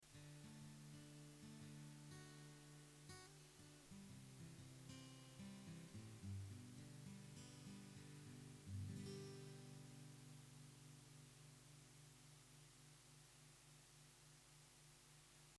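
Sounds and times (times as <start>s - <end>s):
acoustic guitar picking: 0.1s - 12.1s.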